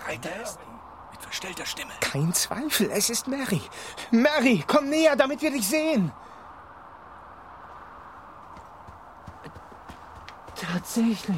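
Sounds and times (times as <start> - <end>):
speech: 0.1 - 6.4, 10.8 - 11.3
small pony's hooves clip-clopping: 8.4 - 11.3.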